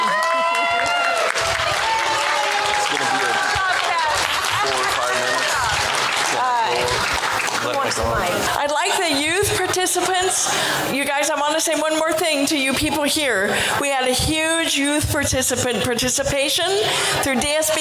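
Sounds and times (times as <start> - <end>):
crowd applause: 0.0 - 9.0
speech: 8.0 - 17.8.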